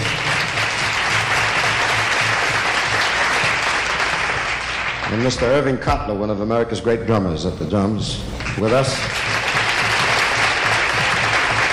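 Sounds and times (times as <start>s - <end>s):
large audience applauding: 0.0s - 5.8s, 8.3s - 11.7s
speech: 5.1s - 9.2s.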